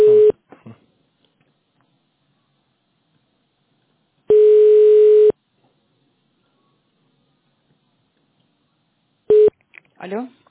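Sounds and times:
telephone transfer tone as a business call is switched: 0:00.0 - 0:00.3, 0:04.3 - 0:05.3, 0:09.3 - 0:09.5.

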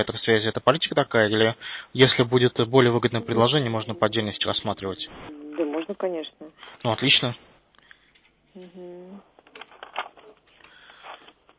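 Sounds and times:
speech: 0:00.0 - 0:07.5, 0:08.6 - 0:09.3
person humming: 0:03.0 - 0:06.6, 0:08.5 - 0:09.4
stacks of papers rustling while searching for a document: 0:09.4 - 0:11.5.

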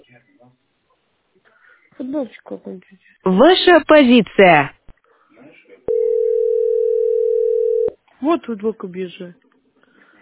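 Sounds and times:
speech: 0:02.0 - 0:04.8, 0:08.2 - 0:09.4
telephone dial tone after a call drops: 0:05.9 - 0:07.9.

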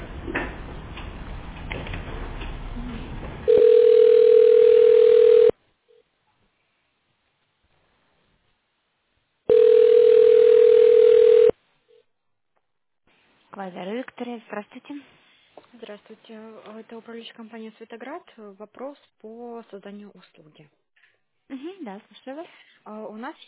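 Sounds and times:
telephone line tone while a call is being transferred: 0:03.5 - 0:05.5, 0:09.5 - 0:11.6
speech: 0:13.7 - 0:15.2, 0:15.8 - 0:20.8, 0:21.5 - 0:23.4.

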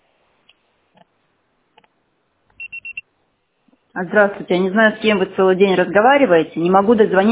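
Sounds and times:
high-pitched voicemail beep tone: 0:02.6 - 0:03.0
speech: 0:04.0 - 0:07.2.

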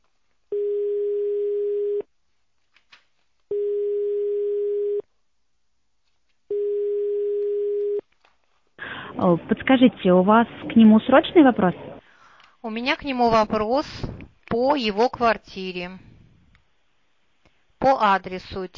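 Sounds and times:
telephone ringback tone while a caller waits for an answer: 0:00.5 - 0:02.0, 0:03.5 - 0:05.0, 0:06.5 - 0:08.0
speech: 0:09.2 - 0:11.9, 0:12.6 - 0:16.1, 0:17.8 - 0:18.7.

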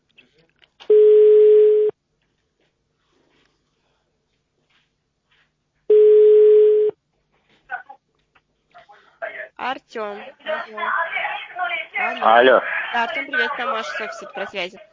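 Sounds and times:
telephone ringback tone while calling someone: 0:00.9 - 0:01.9, 0:05.9 - 0:07.0
speech: 0:10.0 - 0:11.2, 0:12.0 - 0:14.9.

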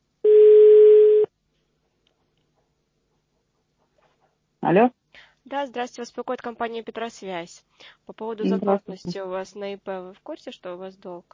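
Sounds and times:
telephone ringback tone while a call connects: 0:00.3 - 0:01.3
speech: 0:04.6 - 0:11.3.

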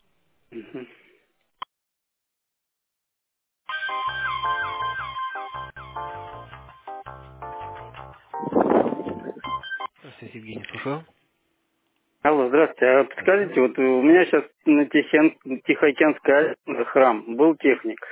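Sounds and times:
speech: 0:00.5 - 0:01.1, 0:10.2 - 0:11.2, 0:12.2 - 0:18.1
phone line ring or hold tune during transfer to tech support: 0:03.7 - 0:09.9.

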